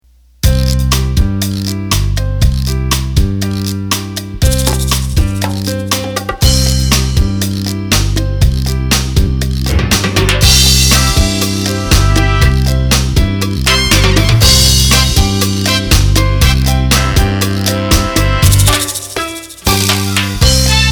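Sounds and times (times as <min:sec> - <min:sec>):
cha-cha music: 0:00.5 - 0:20.9.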